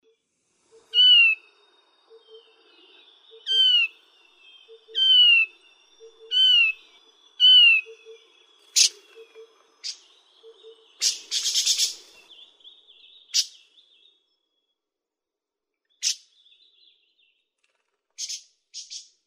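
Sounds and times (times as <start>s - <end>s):
Taiwan barwing calling: 0.7s - 1.5s, 2.1s - 14.0s.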